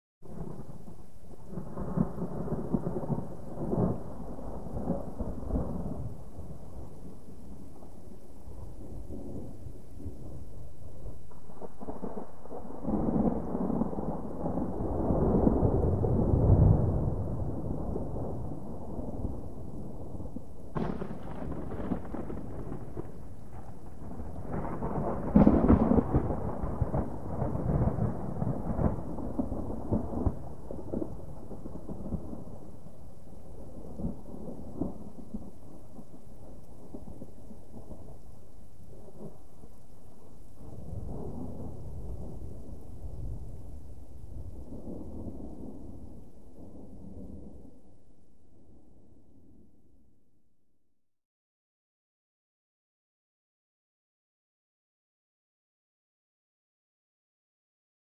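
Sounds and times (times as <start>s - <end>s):
long distant thunder rumble: 0.2s - 49.2s.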